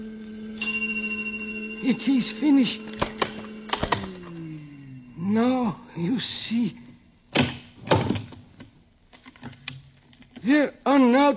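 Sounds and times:
bright bell ringing: 0:00.0 - 0:05.9
steady low electrical hum: 0:00.0 - 0:11.3
speech: 0:01.8 - 0:03.0, 0:05.3 - 0:06.8, 0:10.4 - 0:11.3.

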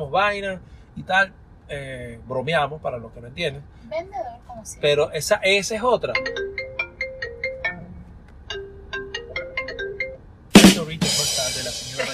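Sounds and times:
speech: 0:00.0 - 0:06.6
mobile phone ringtone for an incoming call: 0:06.2 - 0:10.2.

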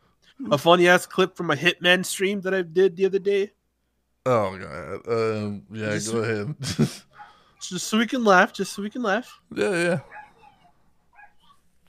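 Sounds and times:
speech: 0:00.4 - 0:03.6, 0:04.2 - 0:10.2
laughter: 0:06.4 - 0:07.1
small dog barking and yipping: 0:10.0 - 0:11.6.

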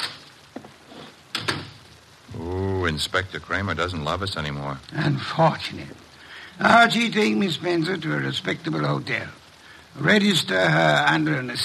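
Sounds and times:
door opening and closing: 0:01.3 - 0:01.9
speech: 0:02.9 - 0:09.4, 0:10.0 - 0:11.6.

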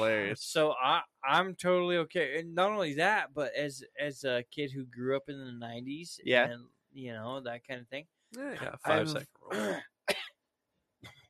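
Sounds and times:
speech: 0:00.0 - 0:09.9
person coughing: 0:08.9 - 0:10.3
throat clearing: 0:09.5 - 0:10.2.

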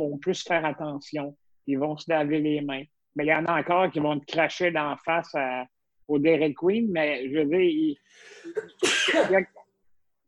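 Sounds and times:
speech: 0:00.0 - 0:09.6
person sneezing: 0:08.4 - 0:09.4.

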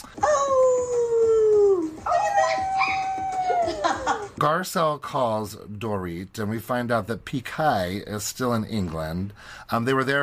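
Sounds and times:
dog howling: 0:00.2 - 0:04.1
speech: 0:04.4 - 0:10.2.

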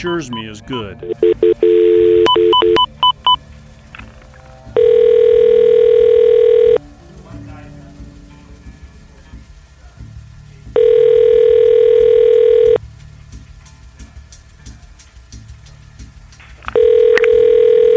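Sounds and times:
speech: 0:00.0 - 0:02.9
touch-tone telephone dialing beeps: 0:01.0 - 0:03.4, 0:04.8 - 0:06.8, 0:10.8 - 0:12.8, 0:16.8 - 0:17.9
quiet telephone line hiss: 0:01.0 - 0:17.9.

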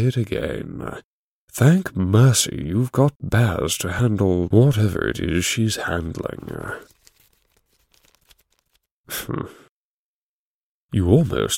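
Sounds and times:
speech: 0:00.0 - 0:07.0, 0:09.1 - 0:09.6, 0:10.9 - 0:11.5
sheets of paper rustling as a person handles them: 0:05.8 - 0:08.9.

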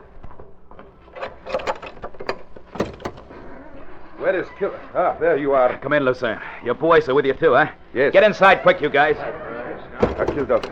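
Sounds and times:
latch clicks and rattles: 0:00.0 - 0:03.4, 0:10.0 - 0:10.7
door being opened: 0:00.0 - 0:05.0, 0:09.9 - 0:10.7
wooden knocks: 0:01.4 - 0:03.3, 0:10.0 - 0:10.7
speech: 0:04.2 - 0:10.7.

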